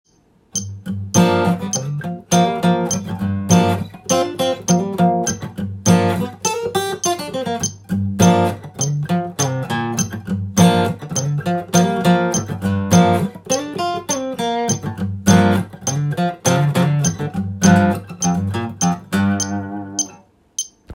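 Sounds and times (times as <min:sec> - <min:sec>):
guitar solo in G minor: 0:00.7 - 0:20.2.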